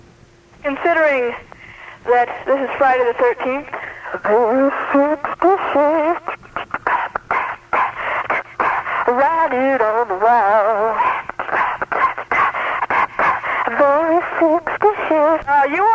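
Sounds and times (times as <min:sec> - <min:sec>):
speech: 0:00.6 - 0:06.3
voice run through an echo chamber effect: 0:00.6 - 0:15.9.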